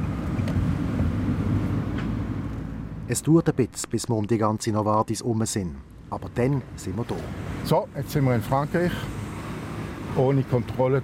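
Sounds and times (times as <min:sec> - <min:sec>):
car engine and road noise driving around the Novartis site: 0:00.0 - 0:11.0
speech: 0:03.1 - 0:09.2, 0:10.1 - 0:11.0.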